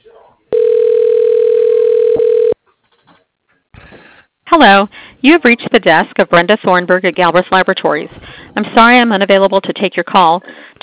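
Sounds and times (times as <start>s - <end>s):
telephone line tone as a call is put through to an office extension: 0.5s - 2.6s
speech: 4.5s - 10.7s.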